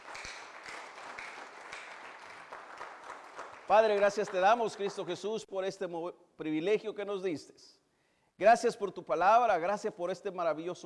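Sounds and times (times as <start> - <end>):
audience applauding: 0.0 - 5.3
speech: 3.7 - 7.8, 8.4 - 10.8.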